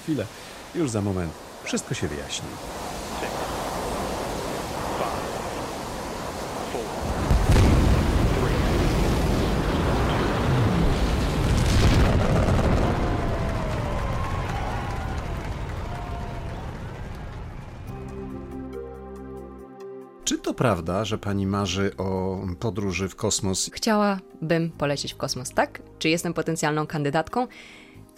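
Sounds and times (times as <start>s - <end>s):
speech: 0.0s - 3.3s, 20.5s - 27.8s
space shuttle rocket engines firing at launch: 2.8s - 17.9s
heavy boom: 7.1s - 13.5s.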